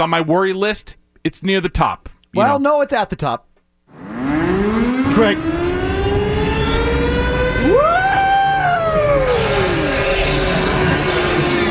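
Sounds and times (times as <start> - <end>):
speech: 0.0 - 3.5, 5.2 - 5.6
siren sound effect wailing: 3.9 - 11.6.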